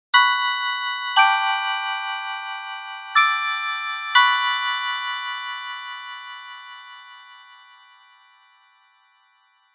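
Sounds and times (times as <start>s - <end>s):
chime: 0.2s - 9.7s.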